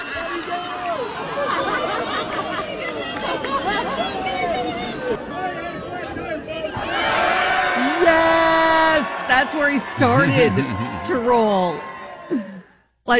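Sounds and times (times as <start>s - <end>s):
laughter: 0.0s - 6.2s, 9.6s - 12.6s
many overlapping voices calling out at a dachshund wiener race: 0.0s - 12.4s
crowd cheering at a dachshund wiener race: 0.0s - 12.8s
speech: 9.3s - 12.4s.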